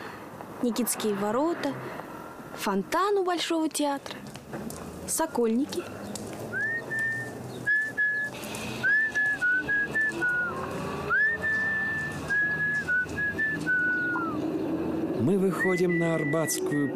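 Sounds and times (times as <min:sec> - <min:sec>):
speech: 0:00.6 - 0:06.1, 0:15.2 - 0:16.9
person whistling a wandering tune: 0:06.6 - 0:14.4, 0:15.5 - 0:16.9.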